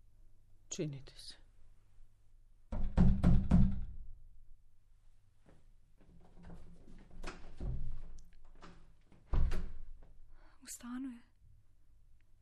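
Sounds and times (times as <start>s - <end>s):
speech: 0.8s - 1.4s, 10.7s - 11.3s
knocking on a wooden door: 2.7s - 4.0s.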